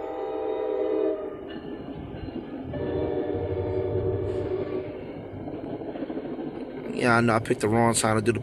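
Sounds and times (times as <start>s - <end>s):
train horn: 0.0s - 1.4s, 2.7s - 5.1s
passing train rumbling: 0.0s - 8.4s
speech: 7.0s - 8.4s.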